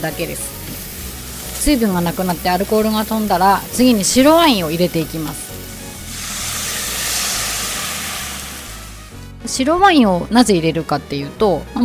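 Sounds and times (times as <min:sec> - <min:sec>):
speech: 0:00.0 - 0:00.6, 0:01.6 - 0:05.4, 0:09.5 - 0:11.8
shrimp shells, garlic and aromatic vegetables stir-frying over high heat in a pot: 0:00.0 - 0:09.4.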